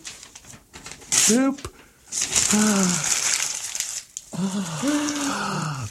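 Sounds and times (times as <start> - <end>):
wrapping paper of a present crinkling and tearing: 0.0 - 5.8
speech: 1.3 - 3.1, 4.4 - 5.8
person making effortful groaning sounds: 2.4 - 3.2, 4.3 - 5.8.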